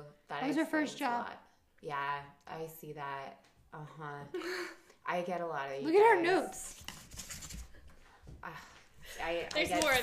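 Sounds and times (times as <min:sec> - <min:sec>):
speech: 0:00.4 - 0:06.8, 0:08.4 - 0:10.0
paper rustling against a microphone: 0:06.5 - 0:08.2.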